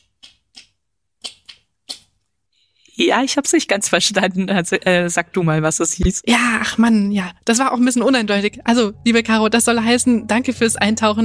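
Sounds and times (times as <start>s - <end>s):
person making mouth clicks imitating sperm whale clicks: 0.0s - 2.3s
speech: 3.0s - 11.2s.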